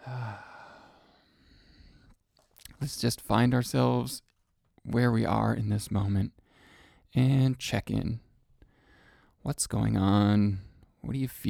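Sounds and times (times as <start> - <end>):
deep breath: 0.0 - 2.2, 6.4 - 7.1, 8.6 - 9.4
speech: 2.8 - 6.4, 7.1 - 8.2, 9.4 - 11.4.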